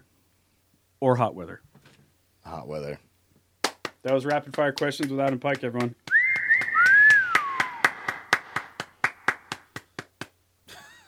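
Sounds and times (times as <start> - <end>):
speech: 1.0 - 1.7, 2.5 - 3.1, 4.0 - 6.1
hand claps: 3.6 - 10.4
bright sliding whistle cheering: 6.1 - 8.2.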